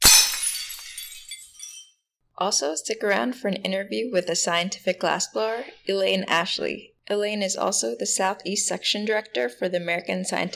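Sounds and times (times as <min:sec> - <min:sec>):
glass shards tinkling and scattering: 0:00.0 - 0:02.0
glass shattering: 0:00.0 - 0:02.0
speech: 0:02.4 - 0:10.5.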